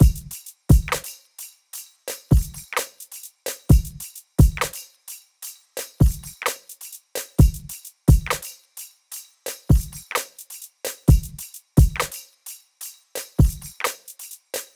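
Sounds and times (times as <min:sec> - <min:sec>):
full drum loop at 130 BPM: 0:00.0 - 0:01.2, 0:02.1 - 0:04.9, 0:05.8 - 0:08.6, 0:09.5 - 0:12.3, 0:13.2 - 0:14.7.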